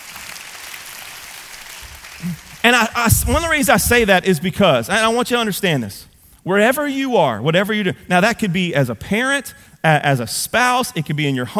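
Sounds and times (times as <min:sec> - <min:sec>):
crowd clapping: 0:00.0 - 0:04.0
speech: 0:02.2 - 0:11.5.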